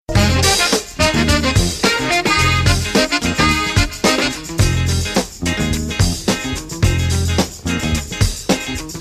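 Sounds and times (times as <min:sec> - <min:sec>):
jazz tone: 0:00.1 - 0:08.9.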